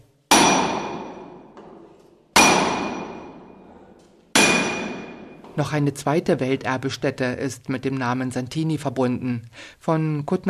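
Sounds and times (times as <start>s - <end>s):
hammer striking silver coin blank: 0.3s - 3.7s, 4.3s - 5.6s
speech: 5.6s - 10.4s.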